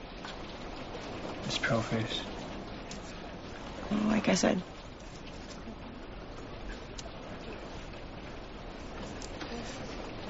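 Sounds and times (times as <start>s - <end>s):
rain falling: 0.0s - 10.2s
speech: 1.5s - 2.4s, 3.9s - 4.8s.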